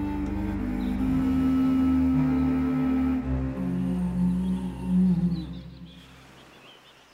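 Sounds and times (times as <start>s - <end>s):
beached whale moaning: 0.2s - 5.6s.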